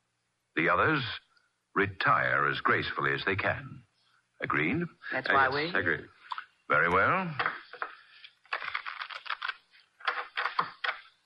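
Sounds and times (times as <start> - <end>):
speech: 0.6 - 1.2, 1.8 - 7.6
playing cards being shuffled: 7.3 - 11.2.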